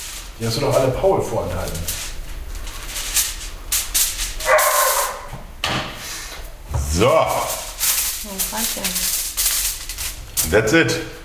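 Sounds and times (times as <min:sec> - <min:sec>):
speech: 0:00.4 - 0:02.0, 0:07.0 - 0:07.6, 0:08.2 - 0:09.2, 0:10.5 - 0:11.2
dog barking for treats: 0:04.4 - 0:05.3.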